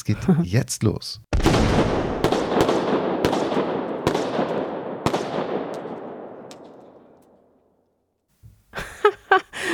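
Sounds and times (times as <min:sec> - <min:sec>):
speech: 0:00.0 - 0:01.3
volley of rifle gunshots with tails: 0:01.3 - 0:07.2
laughter: 0:08.8 - 0:09.7.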